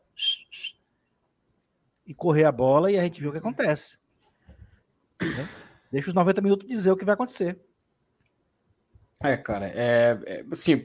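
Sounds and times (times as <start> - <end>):
breathy mouth whistle blasts imitating a referee's whistle: 0.1 - 0.9
speech: 2.1 - 4.0, 5.4 - 7.7, 9.2 - 10.8.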